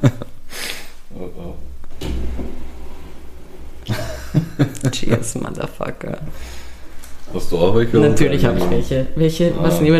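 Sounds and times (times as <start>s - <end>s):
drawer being pulled open: 1.9s - 4.2s
laughter: 3.8s - 5.6s
speech: 4.9s - 6.6s, 7.3s - 9.9s.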